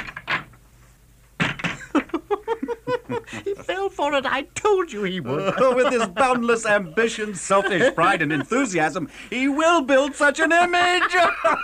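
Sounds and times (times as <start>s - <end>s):
door creaking as it swings: 0.0s - 0.6s, 1.3s - 2.2s
door thud and scrape: 1.4s - 2.2s
laughter: 1.6s - 4.1s, 5.0s - 11.6s
speech: 3.1s - 11.6s.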